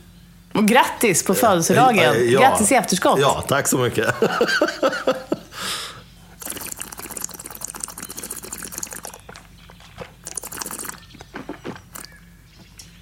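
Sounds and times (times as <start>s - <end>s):
speech: 0.6s - 5.8s
laughter: 1.4s - 5.7s
champagne pouring into a glass: 6.4s - 9.2s, 10.2s - 11.0s
champagne fizzing hiss: 6.4s - 9.3s, 10.2s - 11.1s, 11.8s - 12.2s.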